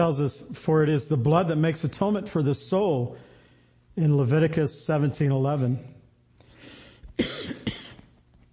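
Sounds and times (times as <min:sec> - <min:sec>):
speech: 0:00.0 - 0:03.3, 0:04.0 - 0:06.0
soft breath in: 0:06.4 - 0:07.2
person coughing: 0:07.2 - 0:08.1.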